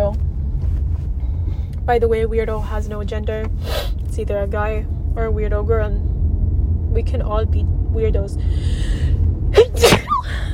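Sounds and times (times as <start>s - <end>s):
low hum: 0.0s - 10.5s
speech: 1.9s - 6.1s, 6.9s - 9.1s
sniff: 3.6s - 4.0s
person sneezing: 9.6s - 10.4s.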